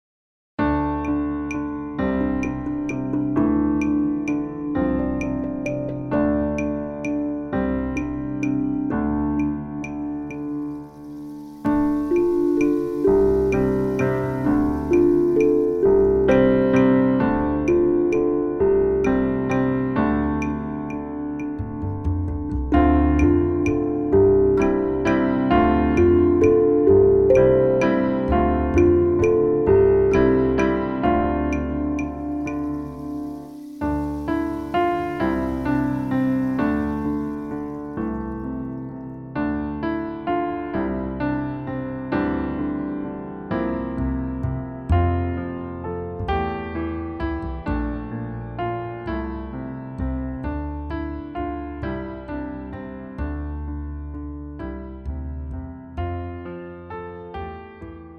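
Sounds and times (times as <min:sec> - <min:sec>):
instrumental sea-themed music: 0:00.6 - 0:58.1.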